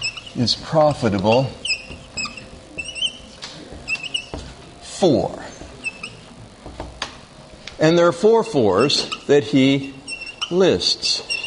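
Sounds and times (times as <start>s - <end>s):
new pens squeaking as they write: 0.0s - 4.6s, 5.5s - 6.8s, 8.7s - 9.4s, 10.0s - 11.4s
speech: 0.4s - 1.6s, 5.0s - 5.4s, 7.8s - 11.3s.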